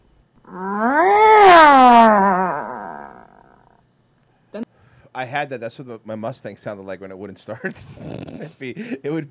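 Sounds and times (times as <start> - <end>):
person imitating a satisfied cat meow: 0.5 - 3.6
speech: 5.2 - 9.2.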